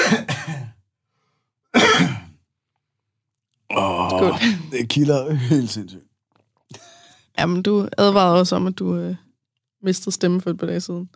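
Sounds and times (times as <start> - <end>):
person clearing throat: 0.0 - 0.8, 1.8 - 2.4, 3.7 - 4.8
person coughing: 0.0 - 0.8, 1.8 - 2.4
speech: 4.1 - 6.1, 6.7 - 9.2, 9.8 - 11.1.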